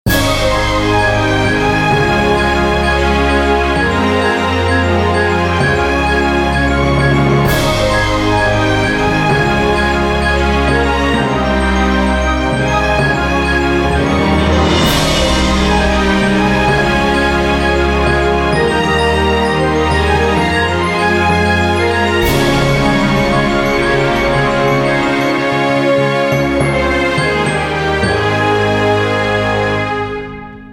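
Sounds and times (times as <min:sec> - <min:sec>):
symphonic mobile ringtone: 0:00.1 - 0:29.8.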